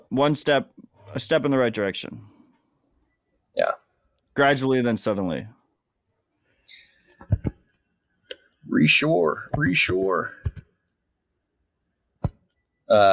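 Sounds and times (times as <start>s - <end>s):
speech: 0.1s - 2.3s, 3.6s - 3.8s, 4.4s - 5.6s, 8.7s - 10.6s, 12.9s - 13.1s
computer keyboard typing: 7.2s - 7.6s, 9.5s - 10.7s.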